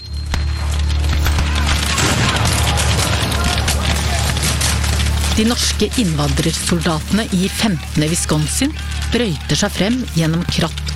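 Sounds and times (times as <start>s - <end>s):
crackling blasts in battle: 0.0s - 10.9s
cannon fire in battle: 0.3s - 6.9s
splintering impacts: 0.3s - 10.9s
speech: 5.4s - 10.9s.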